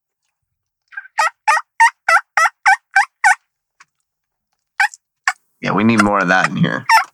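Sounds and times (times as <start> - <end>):
mouth call imitating hen turkey yelps: 0.9 - 3.4, 4.8 - 7.1
speech: 5.6 - 6.9.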